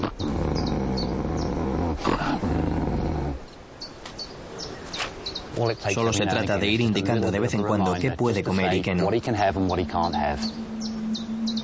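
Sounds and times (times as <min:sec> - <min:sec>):
wolves growling over food: 0:00.0 - 0:03.5
speech: 0:05.6 - 0:10.7.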